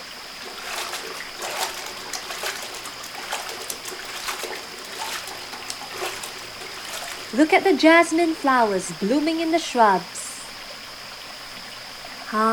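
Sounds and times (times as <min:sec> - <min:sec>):
river water trickling and splashing while clothes are washed at a riverbank: 0:00.0 - 0:10.0
speech: 0:07.4 - 0:10.2, 0:12.3 - 0:12.5.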